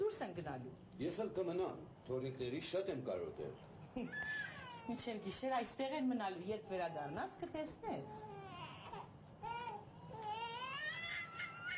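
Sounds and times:
speech: 0:00.1 - 0:08.3
baby crying: 0:04.1 - 0:05.2, 0:08.0 - 0:11.7.

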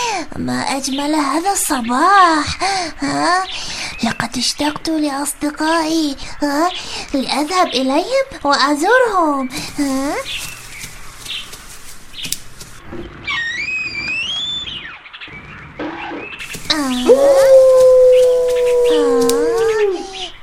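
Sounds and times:
speech: 0:00.2 - 0:10.5, 0:16.8 - 0:17.7
wolf howling: 0:16.7 - 0:20.4.

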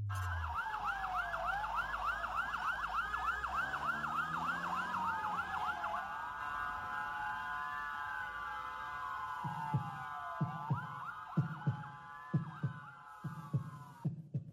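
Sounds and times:
slow rising-and-falling siren-like tone: 0:00.1 - 0:13.9
steady thumping heartbeat in double beats: 0:09.3 - 0:14.4.

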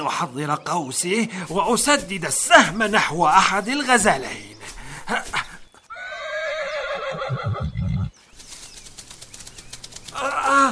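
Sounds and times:
speech: 0:00.0 - 0:04.5, 0:05.1 - 0:05.4
rustling flapping noise: 0:01.4 - 0:05.8, 0:08.0 - 0:10.7
horse whinnying: 0:05.9 - 0:08.1.

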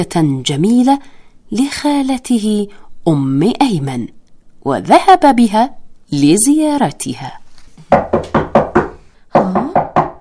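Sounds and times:
speech: 0:00.0 - 0:07.4
sharp knocking on a door: 0:07.8 - 0:10.1.

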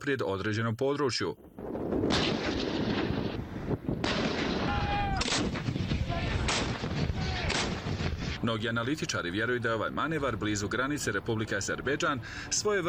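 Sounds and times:
speech: 0:00.0 - 0:02.4, 0:08.4 - 0:12.8
armoured units firing heavy booming shots during a military exercise: 0:01.4 - 0:08.2
gusts of wind noise: 0:01.4 - 0:08.6.

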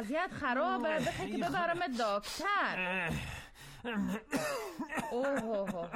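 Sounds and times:
strained voiced sounds: 0:00.0 - 0:05.8
speech: 0:00.0 - 0:05.9
harsh coughs: 0:03.9 - 0:05.9.

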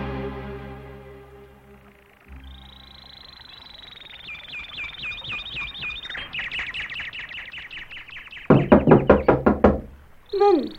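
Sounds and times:
high chirping tones: 0:00.5 - 0:10.7
brief electronic beep: 0:01.9 - 0:07.5
loud sharp knocking on a wooden door: 0:08.5 - 0:10.0.

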